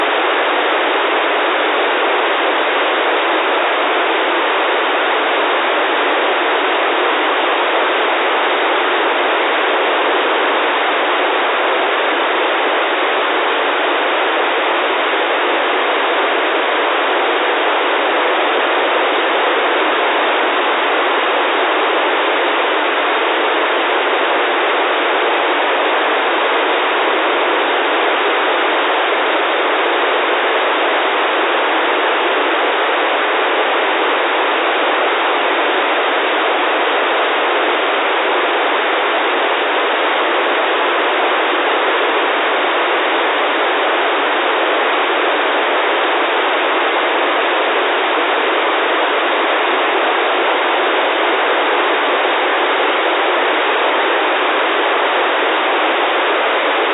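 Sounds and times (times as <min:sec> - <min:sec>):
SDR recording of 2.4 GHz wifi signal: 0:00.0 - 0:56.9.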